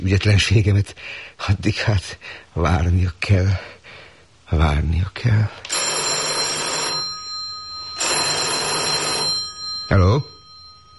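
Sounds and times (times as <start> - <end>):
speech: 0.0 - 3.8, 4.5 - 5.8, 9.9 - 10.3
telephone bell ringing: 5.7 - 10.9.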